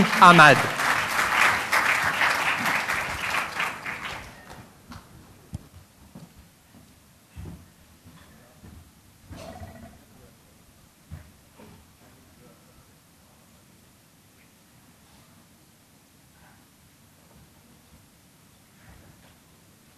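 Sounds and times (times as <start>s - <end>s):
speech: 0.0s - 0.8s
conference audience applause welcoming speakers: 0.0s - 4.6s
quiet noise: 0.0s - 19.9s.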